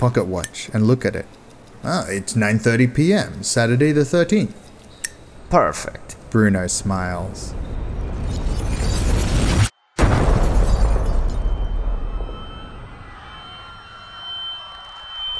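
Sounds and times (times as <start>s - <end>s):
speech: 0.0s - 4.7s, 5.5s - 7.7s
massive explosion in a stadium: 7.8s - 14.1s.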